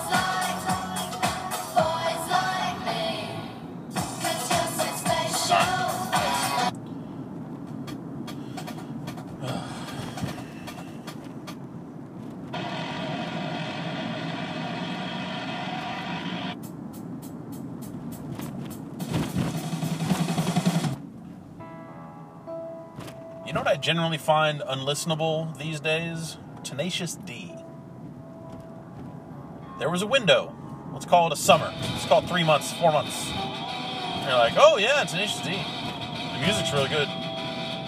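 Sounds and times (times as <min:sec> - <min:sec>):
car engine rumbling: 0:00.0 - 0:37.8
traffic noise: 0:00.0 - 0:37.8
hiss and clatter as the vehicle pulls in: 0:07.6 - 0:11.6, 0:16.6 - 0:21.0
speech: 0:23.8 - 0:27.4, 0:29.8 - 0:33.5, 0:34.3 - 0:35.8, 0:36.4 - 0:37.2.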